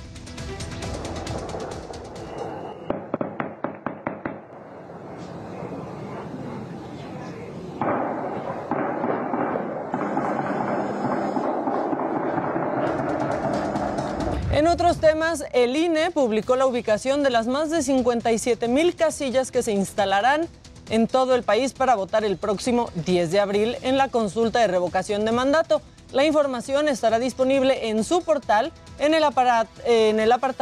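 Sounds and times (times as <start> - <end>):
gunshots fired by armed men at a cockfighting arena at night: 1.0 - 4.5, 7.8 - 14.7
noisy din: 4.6 - 14.4
speech: 14.6 - 30.6.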